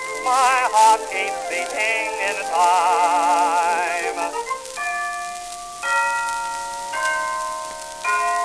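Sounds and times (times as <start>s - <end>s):
speech: 0.3s - 3.6s
clock chiming three o'clock: 4.8s - 8.4s.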